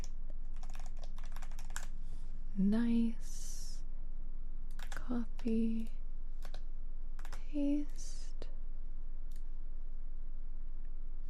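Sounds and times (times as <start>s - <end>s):
typing on a computer keyboard: 0.0s - 1.9s, 4.7s - 5.0s, 5.8s - 6.6s, 7.2s - 7.4s
low steady hum: 0.0s - 11.2s
speech: 2.6s - 3.4s, 5.1s - 6.0s, 7.5s - 8.1s.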